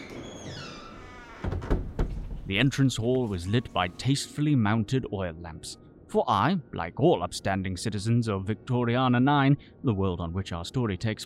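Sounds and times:
large door creaking open: 0:00.0 - 0:02.8
speech: 0:02.5 - 0:11.2.

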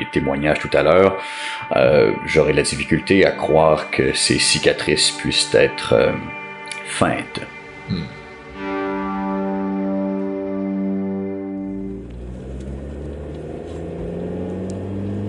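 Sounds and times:
speech: 0:00.1 - 0:08.2
car driving with a humming engine drone: 0:07.5 - 0:15.2
broad rough road rumble: 0:10.9 - 0:15.2.

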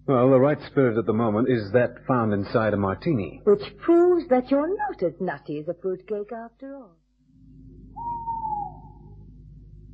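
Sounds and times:
speech: 0:00.1 - 0:07.0
low rumbling hum: 0:07.2 - 0:09.9
owl hooting: 0:07.9 - 0:09.3.

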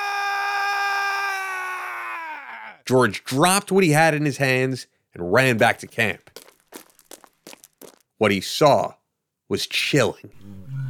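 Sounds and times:
piercing scream: 0:00.0 - 0:02.8
speech: 0:02.9 - 0:06.4, 0:08.2 - 0:10.7.

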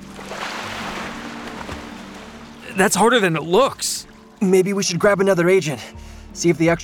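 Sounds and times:
water sloshing against a small boat being rocked: 0:00.0 - 0:04.4
speech: 0:02.8 - 0:06.8.

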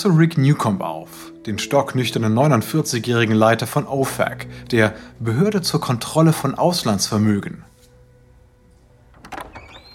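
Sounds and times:
speech: 0:00.0 - 0:07.7
door rattling clunk: 0:09.1 - 0:09.9
door hinge squeaking: 0:09.2 - 0:09.9.

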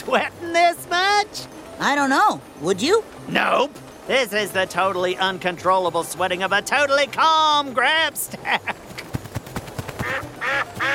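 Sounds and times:
speech: 0:00.1 - 0:08.8
duck quacking loud, nasal and raspy: 0:10.0 - 0:10.9.

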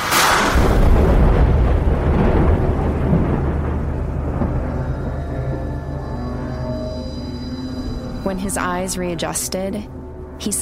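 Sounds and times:
thunder rumbling from a thunderstorm over a field of crops: 0:00.0 - 0:10.6
speech: 0:08.3 - 0:10.6.

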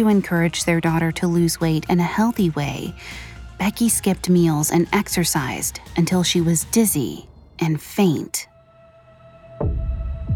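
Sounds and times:
speech: 0:00.0 - 0:08.5, 0:09.6 - 0:09.9
rapid heartbeat thumping: 0:09.6 - 0:10.3.

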